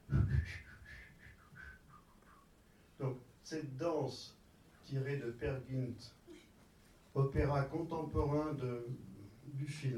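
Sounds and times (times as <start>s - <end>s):
man whistling a tune in an early sound film scene: 0.1s - 2.5s
speech: 3.0s - 6.2s, 7.2s - 9.9s.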